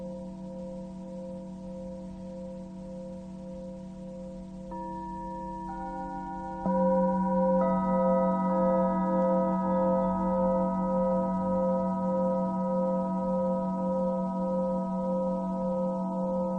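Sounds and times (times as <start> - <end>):
Tibetan singing bowl ringing with shimmering tone: 0.0 - 16.5.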